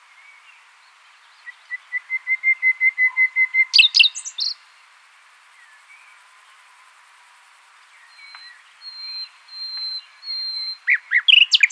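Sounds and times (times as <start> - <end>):
Common nightingale Luscinia megarhynchos song of whistled notes: 0.1 - 4.6, 8.0 - 11.7.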